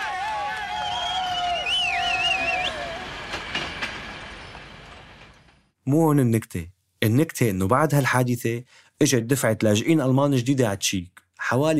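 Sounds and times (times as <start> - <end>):
train from Czechia into East Germany rumbling: 1.1 - 5.8
speech: 5.9 - 11.7.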